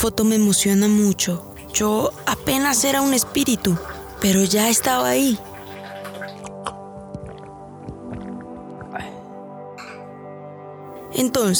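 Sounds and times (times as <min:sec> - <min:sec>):
speech: 0:00.0 - 0:05.5, 0:11.2 - 0:11.5
person drinking water with sips and swallows: 0:01.2 - 0:09.2.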